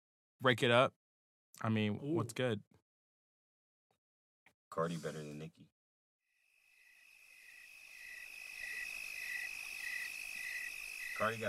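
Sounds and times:
speech: 0.4 - 1.0, 1.6 - 2.8, 4.8 - 5.8, 11.2 - 11.4
chorus of crickets chirping with a high-pitched trill: 6.4 - 11.4.

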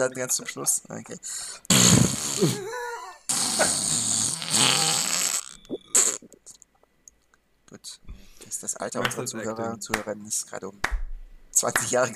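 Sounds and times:
speech: 0.0 - 2.8, 8.8 - 12.1
voice making sputtering raspberry sounds imitating farts: 1.7 - 2.6, 3.3 - 6.4
laughter: 2.4 - 3.3.

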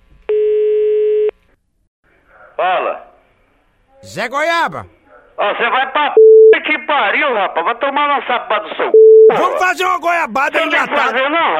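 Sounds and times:
telephone call line tone: 0.3 - 1.3, 6.2 - 6.5, 9.0 - 9.4
speech: 4.0 - 6.2, 6.9 - 11.5.

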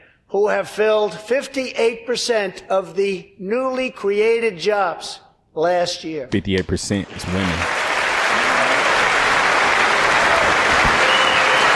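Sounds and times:
speech: 0.3 - 7.8
large crowd of congress members applauding: 7.1 - 11.7.

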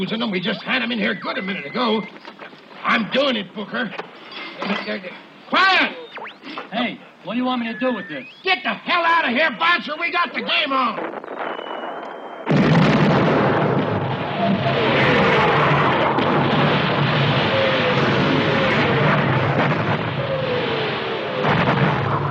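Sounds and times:
speech: 0.0 - 11.2
heavy artillery fire on a battlefield near a damaged bridge: 10.8 - 22.3.

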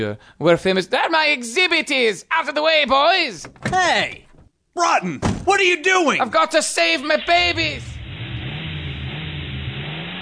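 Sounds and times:
speech: 0.0 - 7.9
stolen car engine revving as it pulls away: 7.4 - 10.1.

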